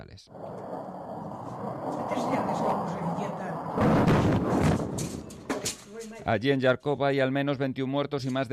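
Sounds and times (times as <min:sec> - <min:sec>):
speech: 0:00.0 - 0:00.9, 0:01.6 - 0:05.3, 0:06.0 - 0:08.5
university building collapsing after missile strike: 0:00.3 - 0:06.4
sharp cracking bursts: 0:03.6 - 0:06.2.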